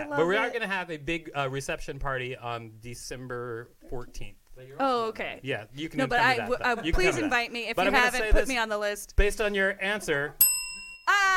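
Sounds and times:
speech: 0.0 - 10.5
bell ding with a lingering tone: 10.4 - 11.3.

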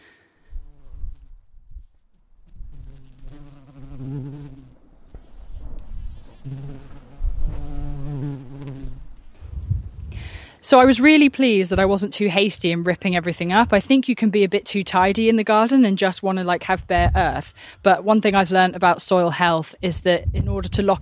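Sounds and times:
soft outdoor rustling: 0.0 - 21.0
bumblebee buzzing around flowers: 0.4 - 10.0
speech: 10.6 - 21.0.

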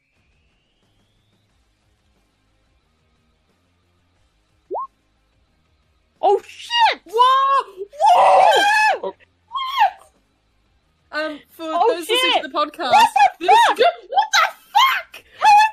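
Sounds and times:
voice imitating a small girl screaming: 6.3 - 10.1, 12.9 - 15.7.

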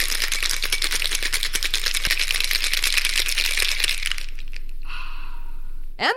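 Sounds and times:
cocktail shaker with ice shaken hard: 0.0 - 4.8
speech: 6.0 - 6.1.

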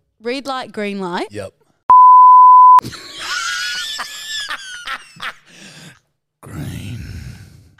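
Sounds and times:
speech: 0.2 - 1.6
censor beep sound effect: 1.9 - 2.8
high-pitched squealing and shrieking laughter: 2.9 - 5.4.

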